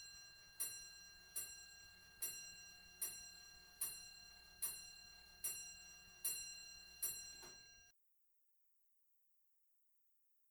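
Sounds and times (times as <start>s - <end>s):
pendulum clock striking midnight with metallic chimes: 0.0s - 7.9s.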